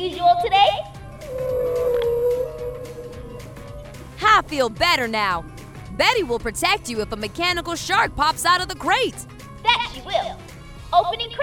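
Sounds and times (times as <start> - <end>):
speech: 0.1 - 1.5, 4.4 - 9.3, 10.0 - 11.4
long sustained whale call: 1.2 - 4.2.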